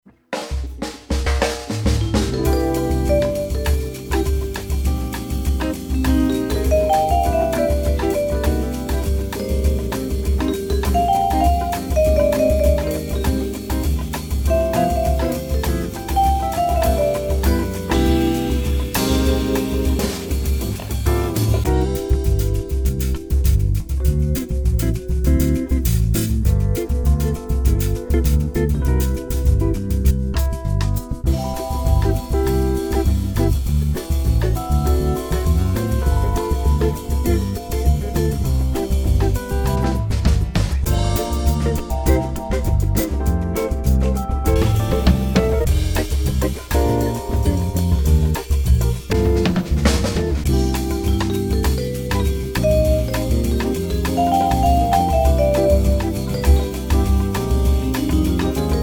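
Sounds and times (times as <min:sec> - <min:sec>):
jazz samba music: 0:00.0 - 0:58.8.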